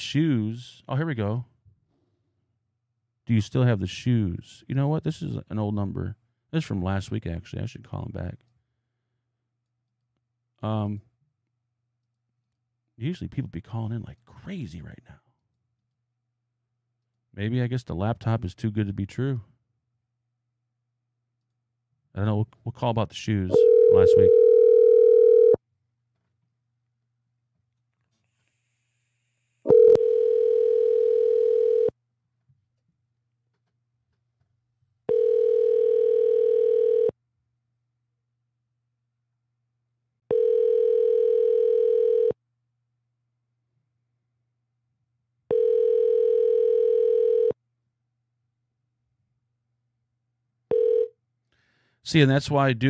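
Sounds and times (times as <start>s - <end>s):
speech: 0.0s - 1.5s, 3.3s - 8.5s, 10.6s - 11.1s, 13.0s - 15.2s, 17.3s - 19.5s, 22.2s - 24.4s, 52.1s - 52.8s
telephone ringback tone through the line: 23.5s - 25.6s, 29.7s - 31.9s, 35.1s - 37.1s, 40.3s - 42.3s, 45.5s - 47.6s, 50.7s - 51.1s.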